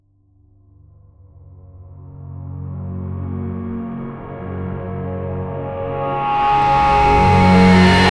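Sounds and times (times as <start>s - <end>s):
rising tension ambient music: 3.0s - 8.1s.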